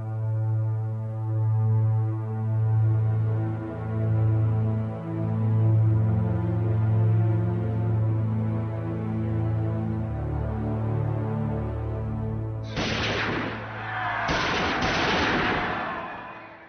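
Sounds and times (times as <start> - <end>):
low sustained musical drone: 0.0 - 16.1
9mm pistol shots fired in St. Peter's Square: 12.7 - 16.6.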